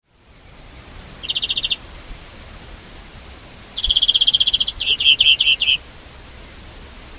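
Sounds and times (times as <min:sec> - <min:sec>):
background hiss: 0:00.0 - 0:07.1
European greenfinch Chloris chloris calling with rapid trills: 0:01.2 - 0:01.8, 0:03.7 - 0:05.8.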